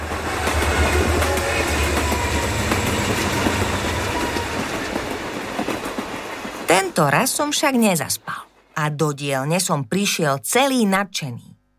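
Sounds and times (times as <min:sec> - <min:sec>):
train wheels clattering on rails over a low rumbling hum: 0:00.0 - 0:06.9
speech: 0:07.0 - 0:11.5.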